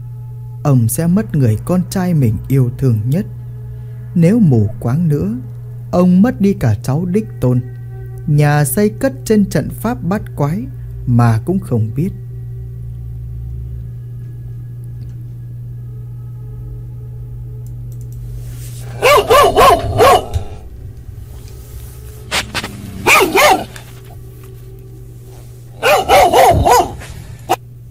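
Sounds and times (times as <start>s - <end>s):
steady low hum: 0.0s - 27.8s
speech: 0.6s - 3.4s, 4.2s - 7.7s, 8.3s - 12.2s
dog barking weakly at night in a remote deserted place: 18.9s - 20.6s, 23.0s - 23.9s, 25.8s - 27.2s.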